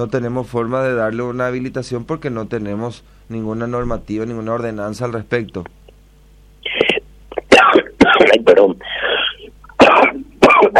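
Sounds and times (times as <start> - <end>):
speech: 0.0 - 5.8, 10.6 - 10.7
fit of repeated harsh coughs: 6.6 - 10.7.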